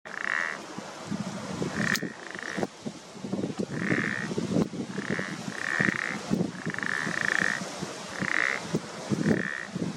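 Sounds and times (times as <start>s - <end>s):
pelodyte ponctue calling: 0.1s - 0.7s, 1.6s - 2.7s, 3.6s - 9.8s.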